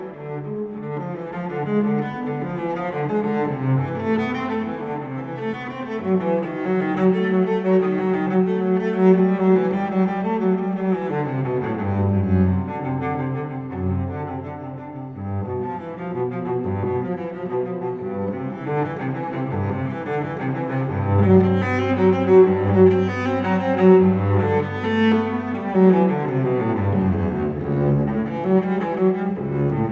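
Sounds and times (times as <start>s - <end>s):
solo cello piece: 0.0s - 29.9s.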